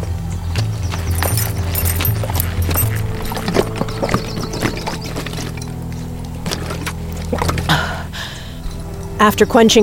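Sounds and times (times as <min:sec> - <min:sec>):
low constant rumble: 0:00.4 - 0:09.8
horse hooves clip-clopping as the horse comes to a halt: 0:00.6 - 0:07.9
speech: 0:09.2 - 0:09.8.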